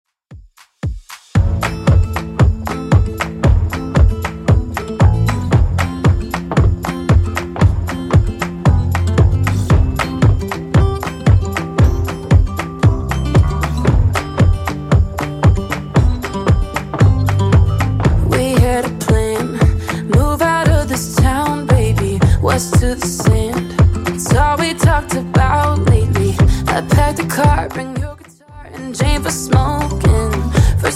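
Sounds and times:
Top40 pop music: 0:01.4 - 0:30.9.

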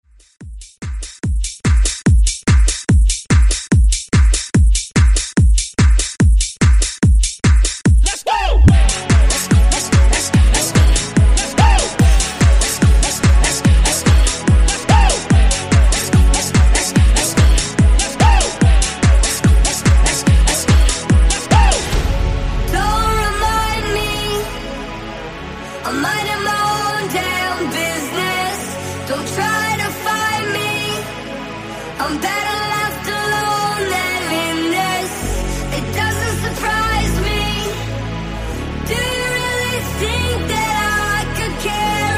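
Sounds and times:
Top40 hype pop dance music: 0:00.8 - 0:38.1, 0:38.8 - 0:42.1.

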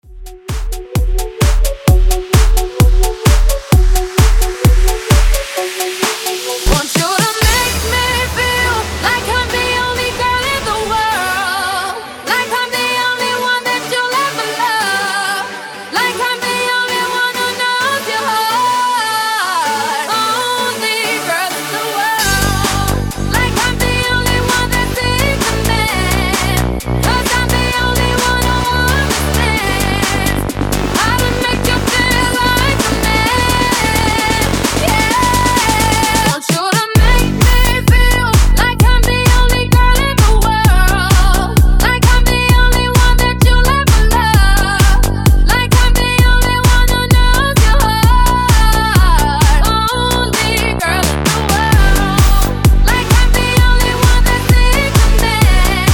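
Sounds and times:
bass house breaker at 130 bpm: 0:00.0 - 0:55.9.

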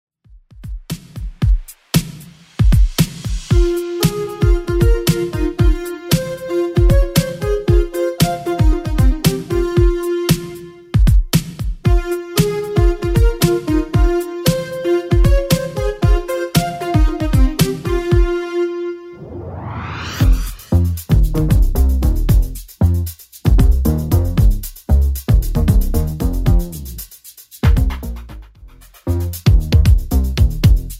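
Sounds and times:
80s drum beat: 0:00.3 - 0:18.4, 0:20.2 - 0:30.9.

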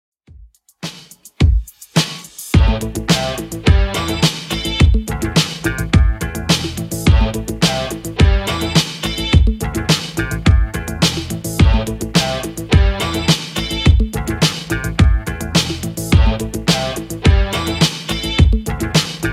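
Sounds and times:
80s drum machine beat: 0:00.3 - 0:19.3.

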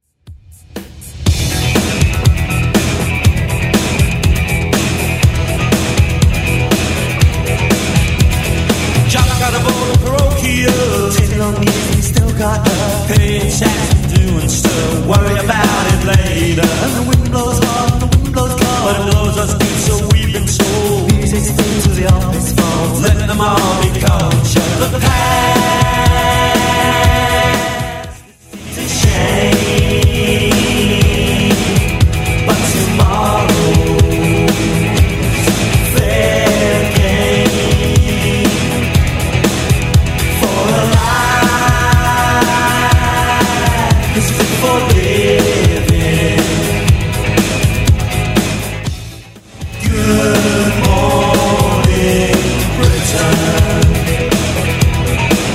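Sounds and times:
90s rock music: 0:00.3 - 0:55.5.

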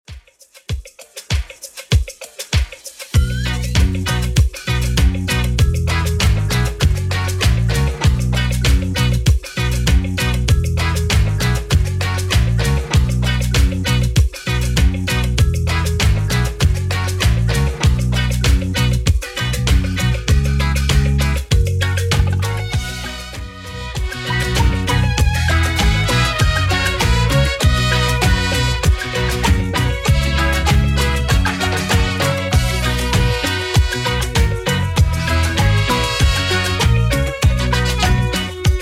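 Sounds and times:
80s drum machine beat at 98 bpm: 0:00.1 - 0:38.8.

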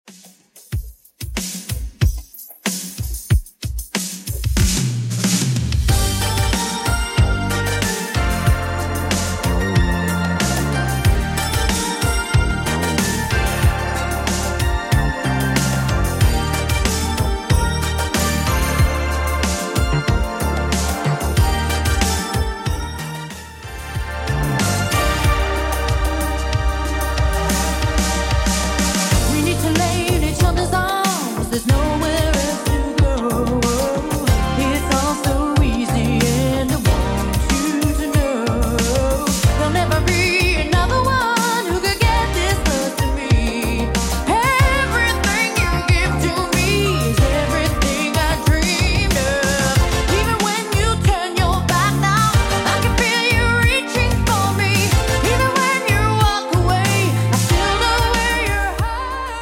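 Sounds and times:
80s Redrum drum machine beat: 0:00.0 - 0:59.4.

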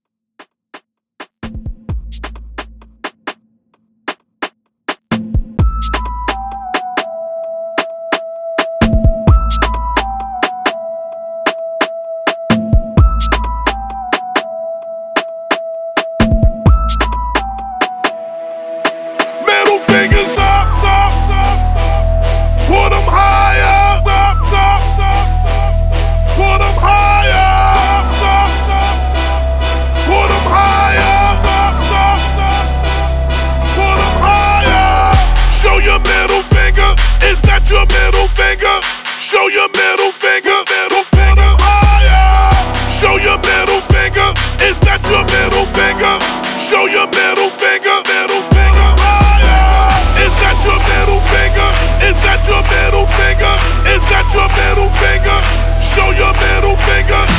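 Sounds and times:
dubstep trap music: 0:01.4 - 0:03.2, 0:05.1 - 0:57.3.

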